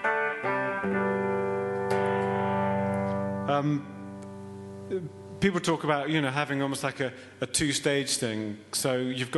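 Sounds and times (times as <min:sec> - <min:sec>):
electric guitar played through a distortion pedal: 0:00.0 - 0:05.9
speech: 0:03.5 - 0:04.0, 0:04.9 - 0:09.3.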